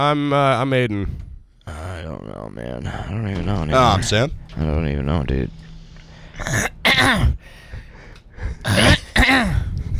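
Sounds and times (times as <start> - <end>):
speech: 0.0 - 1.2, 2.0 - 5.7, 6.4 - 7.6, 8.4 - 9.5
harsh rasping throat clearing: 6.4 - 7.4, 8.6 - 9.7.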